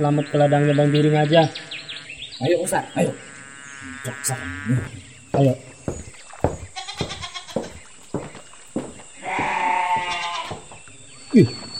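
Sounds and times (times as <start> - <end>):
speech: 0.0 - 1.7, 2.4 - 6.1, 11.4 - 11.6
goat bleating: 2.5 - 7.8, 9.2 - 10.7.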